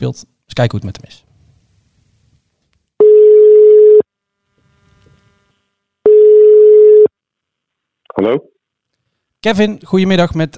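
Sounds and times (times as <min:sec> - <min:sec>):
speech: 0:00.0 - 0:01.3, 0:08.2 - 0:08.5, 0:09.4 - 0:10.5
telephone ringback tones while a call is placed: 0:03.0 - 0:04.0, 0:06.1 - 0:07.1.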